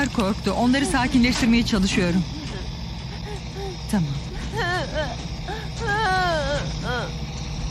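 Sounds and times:
speech: 0.0 - 2.4, 3.9 - 4.2
young child crying in sobbing wails: 3.2 - 7.3.

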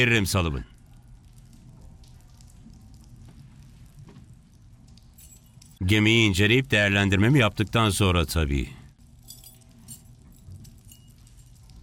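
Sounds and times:
speech: 0.0 - 0.7, 5.8 - 8.8
keys jangling: 5.2 - 5.8, 9.2 - 11.8.

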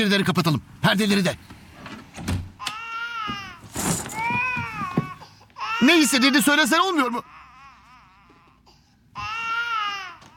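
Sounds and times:
speech: 0.0 - 1.6, 5.8 - 7.4
baby whimpering: 2.6 - 6.4, 7.2 - 10.3
baby crying: 2.6 - 10.3.

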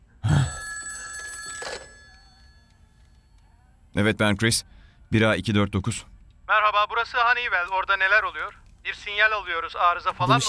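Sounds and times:
telephone bell ringing: 0.2 - 3.3
speech: 4.0 - 10.4.

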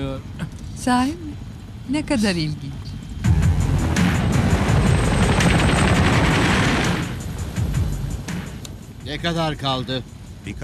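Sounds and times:
speech: 0.0 - 2.8, 9.1 - 10.6
deep roaring helicopter engine drone: 0.0 - 10.6
helicopter rotor chopping: 3.1 - 10.3.

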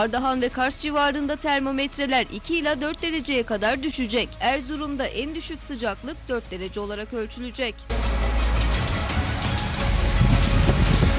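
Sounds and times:
speech: 0.0 - 8.2
large hail impacts in Hatay Turkey: 7.9 - 11.1
sudden heavy downpour in Hatay Turkey: 7.9 - 11.1.

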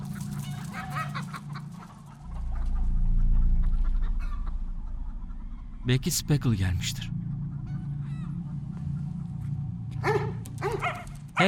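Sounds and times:
steady low droning background: 0.0 - 11.4
speech: 5.8 - 7.2
dog barking: 10.0 - 11.4.

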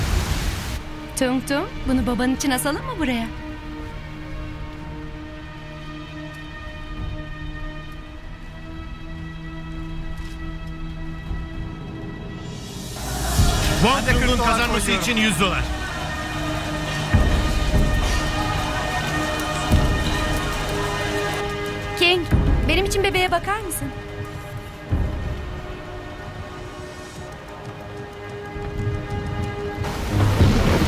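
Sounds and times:
heavy rain: 0.0 - 2.0, 12.4 - 30.8
speech: 1.2 - 3.4, 14.4 - 15.8, 22.0 - 24.0
deep thunder rumbling: 12.6 - 30.8.

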